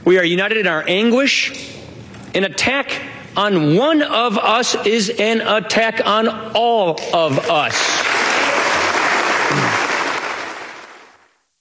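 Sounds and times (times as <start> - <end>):
speech: 0.1 - 8.0
large crowd applauding in a standing ovation: 7.4 - 11.2.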